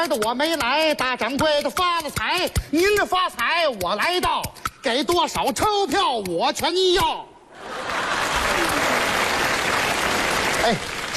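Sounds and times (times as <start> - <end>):
speech: 0.0 - 8.0, 10.6 - 10.8
audience applause: 7.6 - 11.1.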